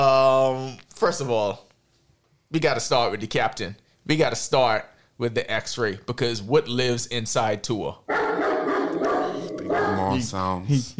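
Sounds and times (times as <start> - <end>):
speech: 1.0 - 1.7, 2.5 - 8.5, 10.1 - 10.9
dog barking and yelping: 8.1 - 10.3.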